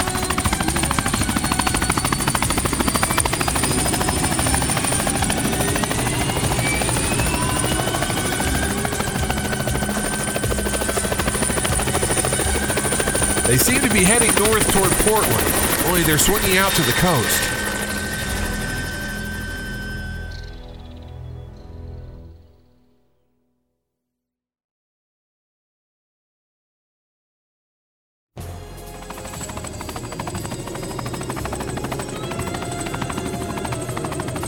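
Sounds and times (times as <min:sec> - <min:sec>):
helicopter rotor chop with whining engine: 0:00.0 - 0:20.1, 0:28.9 - 0:34.4
speech: 0:13.5 - 0:17.6.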